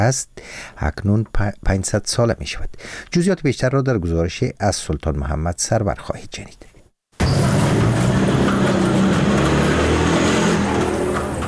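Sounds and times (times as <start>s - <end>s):
speech: 0.0s - 6.7s
motorcycle traffic engines droning and revving on a busy street: 7.2s - 11.4s.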